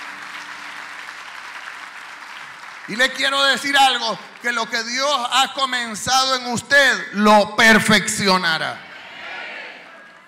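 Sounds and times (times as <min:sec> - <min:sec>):
church congregation applauding: 0:00.0 - 0:06.7, 0:09.6 - 0:10.2
speech: 0:02.9 - 0:08.9.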